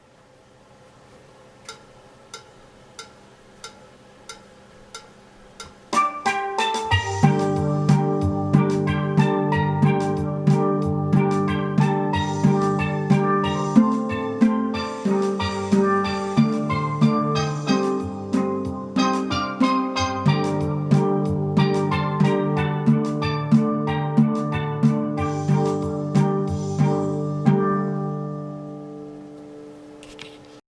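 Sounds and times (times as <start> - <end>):
accompaniment: 1.7 - 30.2
guitar melody: 6.0 - 30.2.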